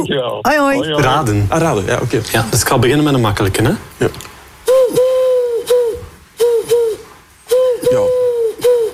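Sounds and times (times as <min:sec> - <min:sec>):
speech: 0:00.0 - 0:04.3
pigeon cooing with low hollow notes: 0:04.7 - 0:08.9.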